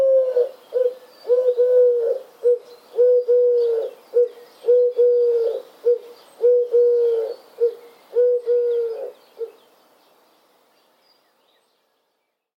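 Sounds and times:
bird cooing: 0.0 - 9.6.

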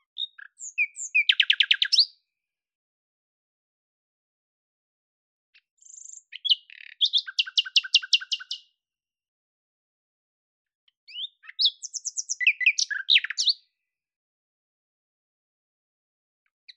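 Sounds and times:
bird song: 0.0 - 2.3, 5.6 - 8.8, 10.9 - 13.9, 16.5 - 16.7.

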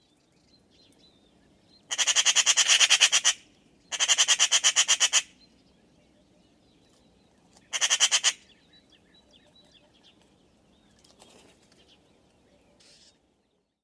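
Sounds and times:
bird giving harsh rapid chattering bursts: 1.9 - 5.4, 7.7 - 8.6.

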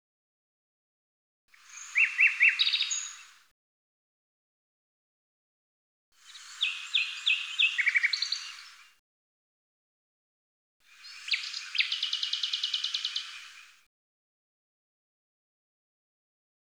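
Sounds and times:
common nightingale singing: 1.6 - 3.3, 6.3 - 8.8, 11.0 - 13.7.

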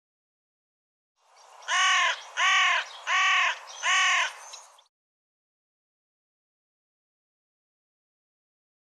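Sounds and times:
bird giving harsh nasal crow-like caws: 1.6 - 4.5.

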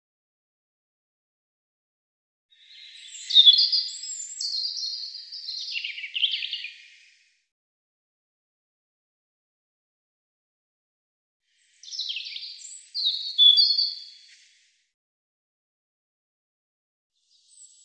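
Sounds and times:
European robin singing: 2.5 - 7.3, 11.6 - 14.3.

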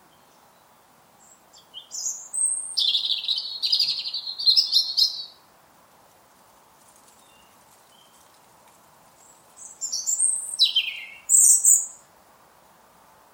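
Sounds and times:
faint bird chirps: 0.0 - 5.4, 9.2 - 12.1
European robin singing: 0.0 - 5.5, 7.2 - 8.3, 9.1 - 12.1.

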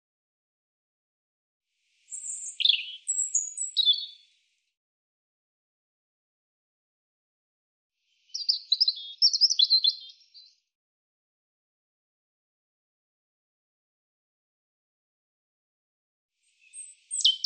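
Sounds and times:
European robin singing: 2.1 - 4.3, 8.2 - 10.6, 16.5 - 17.4.

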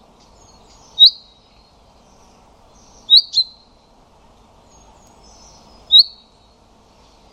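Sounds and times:
common chaffinch pink calls: 0.4 - 1.5, 2.1 - 3.7, 4.7 - 6.4.

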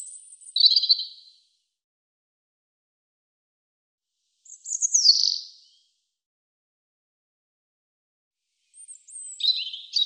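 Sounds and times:
European robin singing: 0.0 - 1.3, 4.4 - 5.8, 8.7 - 10.0.

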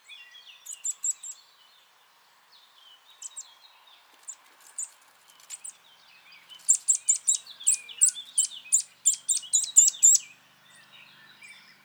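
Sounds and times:
Eurasian nuthatch Sitta europaea calls: 0.2 - 1.4, 3.2 - 5.8, 6.4 - 11.8.

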